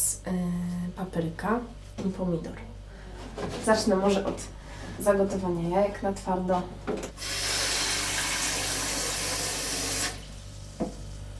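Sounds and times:
speech: 0:00.2 - 0:02.8, 0:03.4 - 0:07.4
water running from a tap into a small pot: 0:07.2 - 0:11.0.

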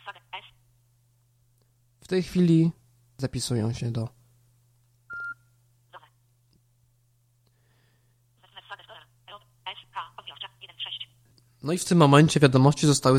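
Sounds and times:
speech: 0:02.1 - 0:04.2, 0:11.7 - 0:13.1
short electronic beep from an app on a tvOS device: 0:05.1 - 0:05.4.

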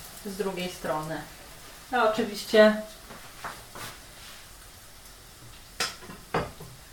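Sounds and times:
crepe frying in a pan: 0:00.0 - 0:06.9
speech: 0:00.2 - 0:03.2
pan and utensil clinking and clattering: 0:05.8 - 0:06.8.

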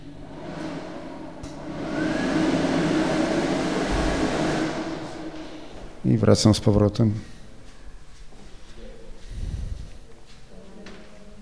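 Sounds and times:
hair dryer running: 0:00.0 - 0:06.0
speech: 0:06.0 - 0:07.3.

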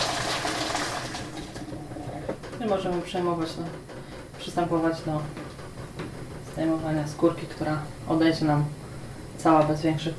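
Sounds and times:
boiling water poured from above over a whole tomato: 0:00.0 - 0:01.8
speech: 0:02.6 - 0:05.4, 0:06.6 - 0:08.8, 0:09.4 - 0:10.1.

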